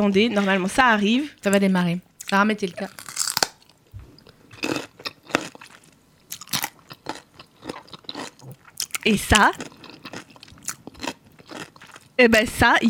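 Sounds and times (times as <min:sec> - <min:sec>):
speech: 0:00.0 - 0:03.1, 0:09.0 - 0:09.7, 0:12.2 - 0:12.8
person crunching and chewing food in an ASMR recording: 0:02.2 - 0:12.1.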